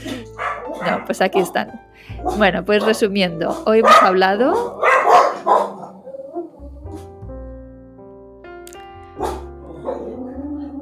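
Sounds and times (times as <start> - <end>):
soft sustained music tones: 0.0 - 10.7
dog barking at seagulls: 0.1 - 6.5, 9.2 - 10.2
speech: 0.8 - 4.9.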